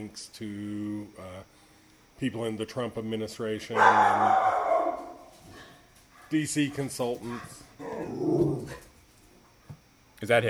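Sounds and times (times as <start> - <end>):
speech: 0.0 - 1.6, 2.2 - 4.7, 6.3 - 8.9, 10.2 - 10.4
dog growling bark: 3.7 - 5.8, 6.6 - 9.0.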